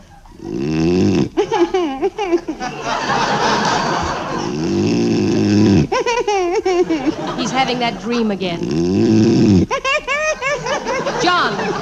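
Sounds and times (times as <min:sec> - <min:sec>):
sleeping man snoring loudly: 0:00.3 - 0:01.4, 0:04.3 - 0:06.0, 0:08.5 - 0:09.7
laughter: 0:01.4 - 0:04.6, 0:05.9 - 0:08.4, 0:09.7 - 0:11.8
speech: 0:06.0 - 0:11.8.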